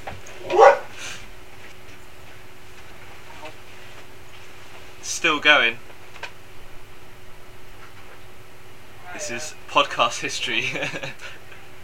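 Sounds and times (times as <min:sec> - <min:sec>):
single short dog bark: 0:00.4 - 0:01.0
speech: 0:05.2 - 0:05.9, 0:09.3 - 0:11.4
laughter: 0:10.4 - 0:11.4.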